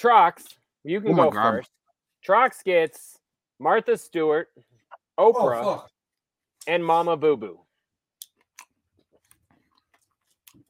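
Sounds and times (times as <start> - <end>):
speech: 0.0 - 5.9, 6.6 - 7.6
wet chewing of a mouthful of food: 8.2 - 10.6.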